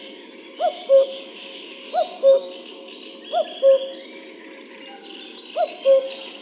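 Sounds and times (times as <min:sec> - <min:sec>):
common cuckoo calling: 0:00.6 - 0:01.2, 0:01.9 - 0:02.5, 0:03.3 - 0:04.0, 0:05.6 - 0:06.3.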